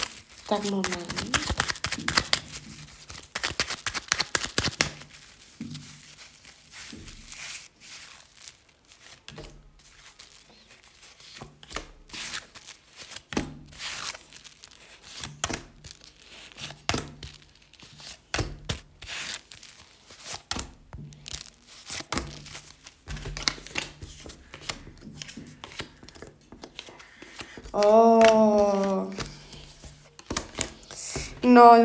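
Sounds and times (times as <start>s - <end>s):
deck of tarot cards shuffling during a tarot reading: 0.0s - 5.4s, 18.0s - 31.8s
speech: 0.5s - 2.2s, 31.6s - 31.8s.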